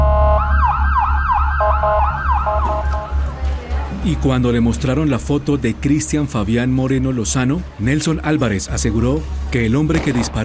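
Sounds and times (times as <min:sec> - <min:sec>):
ambulance siren wailing: 0:00.0 - 0:03.2
speech: 0:04.0 - 0:10.4.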